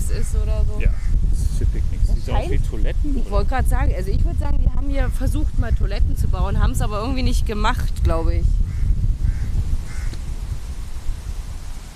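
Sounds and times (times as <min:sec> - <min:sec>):
steady low rumble of wind or traffic outdoors: 0:00.0 - 0:11.9
speech: 0:00.1 - 0:01.2, 0:02.3 - 0:08.6
crows cawing: 0:08.7 - 0:10.2.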